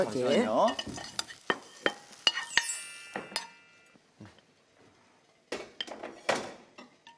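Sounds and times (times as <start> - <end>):
utensil scraping and clinking against a pan while stir-frying shiitake mushrooms: 0.4 - 3.6.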